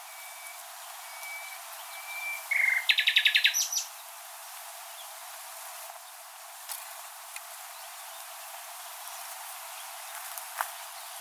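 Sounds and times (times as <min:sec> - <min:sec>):
Common nightingale Luscinia megarhynchos song phrase: 0:00.0 - 0:04.0.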